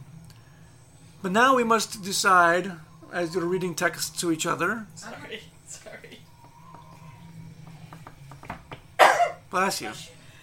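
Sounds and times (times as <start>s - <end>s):
speech: 1.2s - 6.1s, 9.5s - 10.2s
sneeze: 9.0s - 9.4s.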